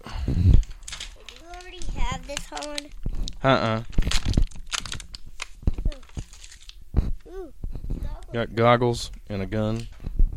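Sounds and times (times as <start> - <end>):
paper packaging rustling and crinkling: 0.6 - 8.1
speech: 2.1 - 4.0, 8.4 - 9.9.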